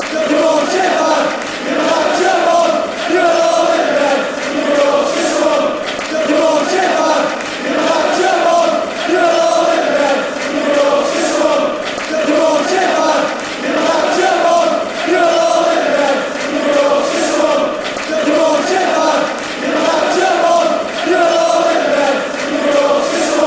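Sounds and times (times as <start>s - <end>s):
crowd chanting: 0.0s - 23.4s.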